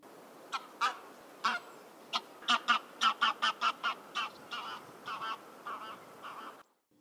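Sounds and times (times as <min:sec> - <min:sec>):
steady low hiss: 0:00.0 - 0:06.9
goose honking: 0:00.5 - 0:06.6.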